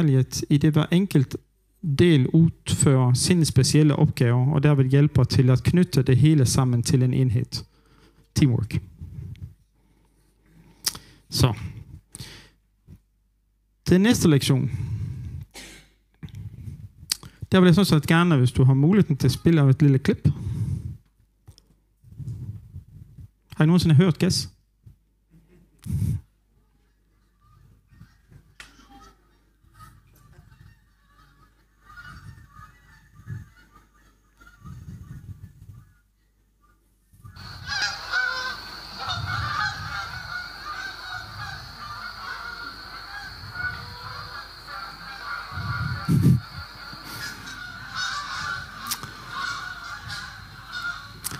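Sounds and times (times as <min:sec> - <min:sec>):
speech: 0:00.0 - 0:07.7, 0:08.4 - 0:08.9, 0:11.3 - 0:12.3, 0:13.9 - 0:15.0, 0:17.5 - 0:20.8, 0:23.6 - 0:24.5, 0:25.8 - 0:26.2
flock of geese honking: 0:30.6 - 0:34.8, 0:37.3 - 0:51.3.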